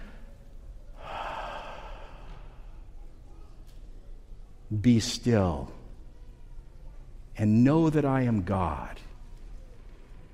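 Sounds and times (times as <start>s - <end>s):
faint steady hiss: 0.0s - 10.3s
person taking a deep breath while kneeling in private prayer: 1.0s - 2.8s
speech: 4.7s - 5.8s, 7.4s - 9.1s.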